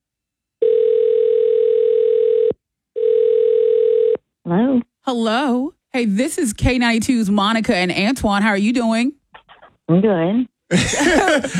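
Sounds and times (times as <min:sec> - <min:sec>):
telephone ringback tones: 0:00.6 - 0:04.2
speech: 0:05.1 - 0:09.2, 0:09.9 - 0:11.5
laughter: 0:10.7 - 0:11.5.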